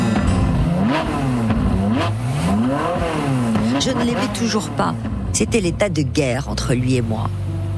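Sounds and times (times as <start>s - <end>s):
sports car engine revving and accelerating through gears: 0.0s - 5.8s
speech: 3.9s - 7.4s.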